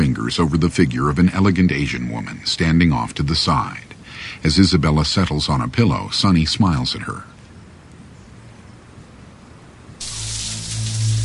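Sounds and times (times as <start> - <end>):
speech: 0.3 - 7.3
shower water spray running: 10.0 - 11.2.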